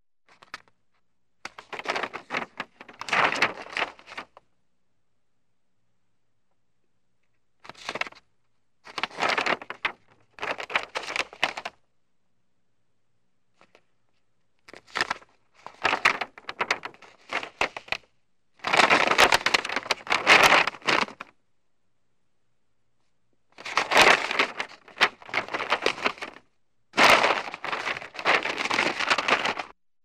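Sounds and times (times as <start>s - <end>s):
newspaper pages turning: 0.3s - 0.8s, 1.4s - 4.4s, 7.6s - 8.2s, 8.9s - 11.8s, 14.7s - 21.3s, 23.6s - 26.4s, 27.0s - 29.8s
newspaper folding: 1.4s - 4.4s, 7.6s - 8.2s, 8.8s - 11.8s, 14.7s - 21.3s, 23.6s - 29.8s
newspaper unfolding: 1.5s - 4.3s, 8.9s - 11.7s, 14.7s - 18.0s, 18.6s - 21.3s, 23.6s - 26.4s, 27.0s - 29.8s.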